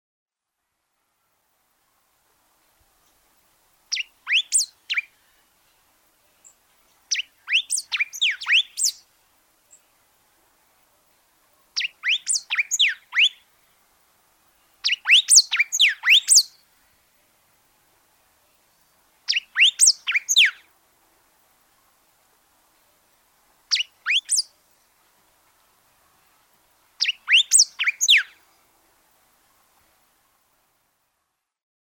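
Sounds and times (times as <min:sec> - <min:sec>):
yellow cardinal: 0:02.8 - 0:30.8.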